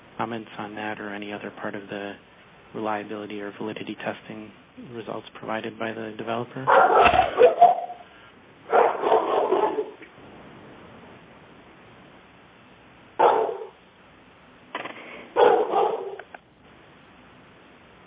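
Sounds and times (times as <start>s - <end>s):
speech: 0.2s - 7.7s
dog barking: 6.7s - 8.0s, 8.7s - 10.0s, 13.2s - 13.8s, 15.4s - 16.3s.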